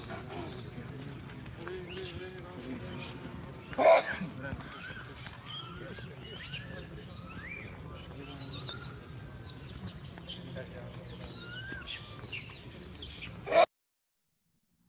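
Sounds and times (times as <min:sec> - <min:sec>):
group of people talking and walking with dogs along a parikram path: 0:00.0 - 0:13.7
dog barking: 0:13.5 - 0:13.7.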